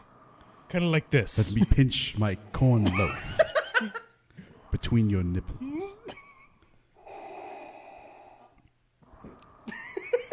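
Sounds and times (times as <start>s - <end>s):
slow deep airy breaths: 0.0s - 1.0s, 4.3s - 6.0s, 6.8s - 10.1s
speech: 0.7s - 4.0s, 4.7s - 6.0s
laughter: 1.4s - 4.1s.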